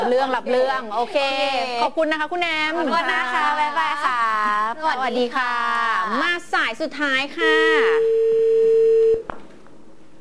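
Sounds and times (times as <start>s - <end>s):
speech: 0.0s - 8.5s
steady single-pitched line tone from a vintage telephone: 7.4s - 9.2s
quiet telephone line noise: 7.4s - 10.1s.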